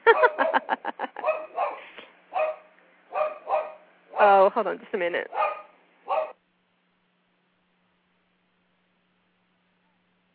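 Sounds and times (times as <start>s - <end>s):
speech: 0.1s - 1.0s, 4.2s - 5.5s
dog barking: 0.1s - 3.9s, 5.3s - 6.4s.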